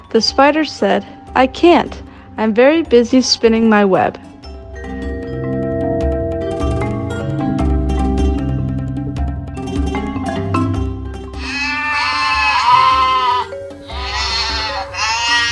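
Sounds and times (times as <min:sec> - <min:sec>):
music: 0:00.0 - 0:15.5
speech: 0:00.1 - 0:04.3
goat bleating: 0:11.4 - 0:15.5.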